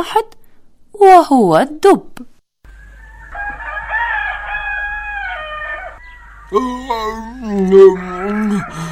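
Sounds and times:
speech: 0.0s - 0.4s, 1.0s - 2.3s, 6.5s - 8.8s
rooster crowing in the morning: 2.7s - 8.8s.

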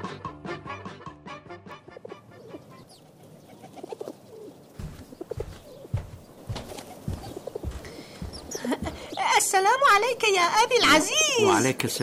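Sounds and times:
pigeons cooing behind a window: 1.7s - 9.8s
light wings fluttering: 1.9s - 10.1s
shuffling: 2.5s - 10.2s
speech: 9.5s - 12.0s.

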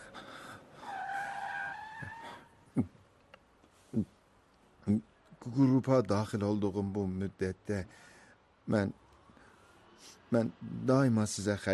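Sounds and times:
car braking to a stop with tire squeal: 0.8s - 2.6s
speech: 2.8s - 3.0s, 4.9s - 8.1s, 8.7s - 9.0s, 10.0s - 11.7s.

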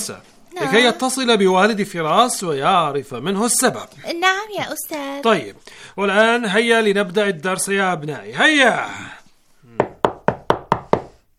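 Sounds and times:
speech: 0.0s - 9.2s
knocks on a door: 9.8s - 11.2s.

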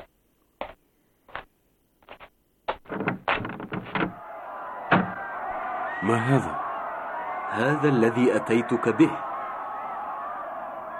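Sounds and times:
small wooden window hatch being unlatched: 2.8s - 4.2s
speech: 6.0s - 6.6s, 7.5s - 9.3s.

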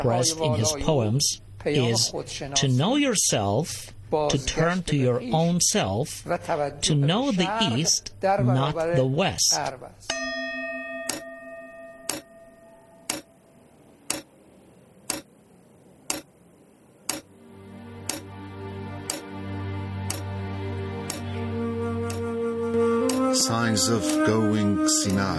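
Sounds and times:
speech: 0.0s - 10.2s, 23.8s - 25.3s
bright chime: 10.1s - 13.1s
low sustained musical tone: 10.1s - 13.7s, 17.3s - 25.3s
clock ticking: 11.0s - 12.4s, 13.0s - 13.3s, 14.1s - 14.3s, 15.1s - 15.3s, 16.1s - 16.3s, 17.1s - 17.3s, 18.1s - 18.3s, 19.1s - 19.3s, 20.0s - 20.3s, 21.0s - 21.3s, 22.0s - 22.3s.

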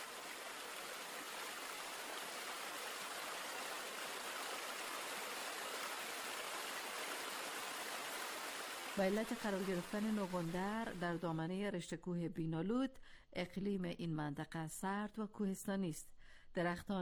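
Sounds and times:
flowing mountain river water rushing: 0.0s - 10.6s
speech: 9.0s - 16.9s.

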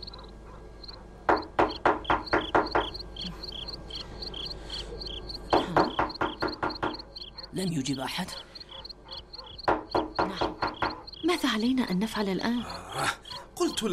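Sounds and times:
crickets chirping at night: 0.0s - 13.9s
firm rapid knocking on the door of a house: 1.3s - 3.0s, 5.5s - 7.1s, 9.6s - 11.2s
speech: 7.6s - 8.6s, 11.3s - 13.9s.

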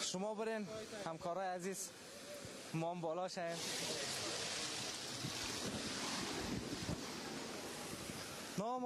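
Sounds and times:
speech: 0.1s - 2.1s, 2.7s - 4.0s, 8.6s - 8.8s
water pouring from a spring: 3.4s - 8.7s.

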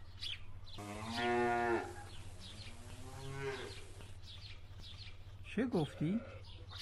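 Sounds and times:
speech: 0.8s - 1.3s, 5.6s - 6.7s
cow mooing: 0.8s - 3.9s.

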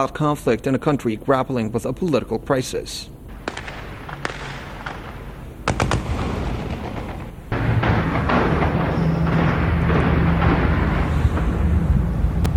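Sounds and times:
speech: 0.0s - 3.2s
gunshots: 3.3s - 12.3s
heavy gunfire and explosions outdoors: 3.3s - 12.5s.

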